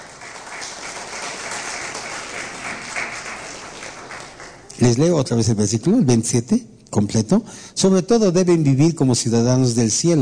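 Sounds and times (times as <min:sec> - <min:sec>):
congregation applauding: 0:00.0 - 0:05.2
speech: 0:04.8 - 0:10.2.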